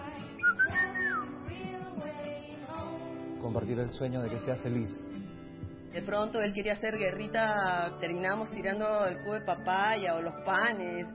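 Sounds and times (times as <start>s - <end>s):
person whistling a short bright melody: 0.4s - 1.4s
speech: 3.4s - 5.2s, 6.0s - 11.1s.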